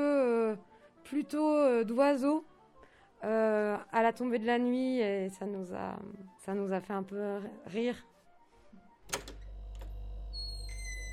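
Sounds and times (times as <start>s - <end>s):
speech: 1.1s - 2.5s, 3.2s - 8.1s
refrigerator humming in a home kitchen: 9.2s - 11.1s.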